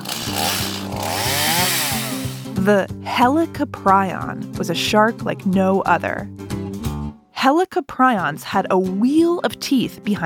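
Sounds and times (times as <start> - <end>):
chainsaw engine revving: 0.0 - 2.7
speech: 2.6 - 6.4, 7.4 - 10.2.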